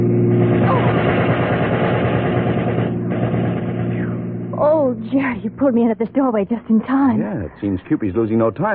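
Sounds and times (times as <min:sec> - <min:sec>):
machine gun fire from a passing car: 0:00.5 - 0:04.2
speech: 0:05.1 - 0:08.7.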